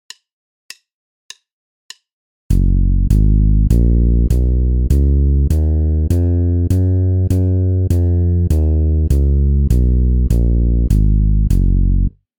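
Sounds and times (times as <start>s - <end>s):
bass playing G-flat major scale exercises: 2.5s - 12.2s.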